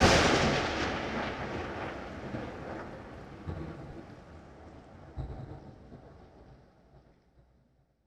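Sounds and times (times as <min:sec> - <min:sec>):
lightning strike: 0:00.0 - 0:03.4
rain: 0:00.0 - 0:07.8.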